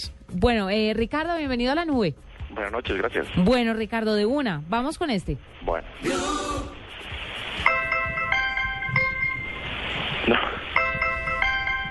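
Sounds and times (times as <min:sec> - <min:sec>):
speech: 0:00.0 - 0:06.8
faint hiss: 0:00.0 - 0:11.8
BlackBerry phone alarm clock tone: 0:07.6 - 0:11.8.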